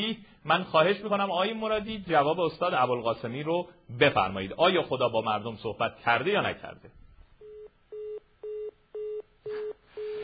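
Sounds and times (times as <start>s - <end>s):
speech: 0.0s - 7.0s
telephone busy tone after call disconnected: 7.4s - 10.2s.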